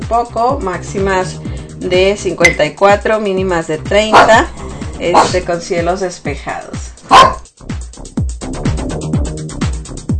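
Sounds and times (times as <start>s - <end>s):
speech: 0.1s - 7.4s
small female dog barking in short sharp yips: 4.1s - 4.4s, 5.1s - 5.4s, 7.1s - 7.5s.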